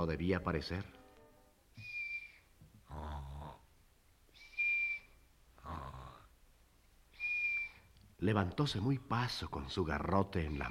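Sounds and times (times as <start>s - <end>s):
speech: 0.0s - 1.0s, 8.2s - 10.7s
sleeper's breath whistling through a hollow tube-shaped key: 1.8s - 2.5s, 4.4s - 5.2s, 7.2s - 7.9s
sleeper snoring: 2.9s - 3.6s, 5.6s - 6.3s.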